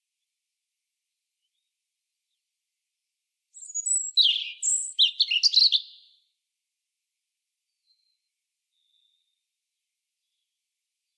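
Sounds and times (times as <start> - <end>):
European robin Erithacus rubecula singing: 1.4 - 2.5, 3.6 - 6.4, 7.7 - 11.1.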